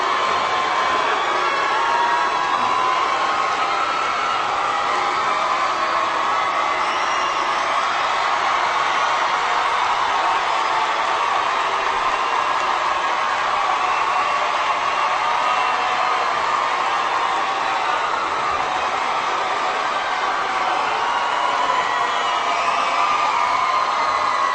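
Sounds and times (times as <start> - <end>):
large crowd booing: 0.0 - 24.5.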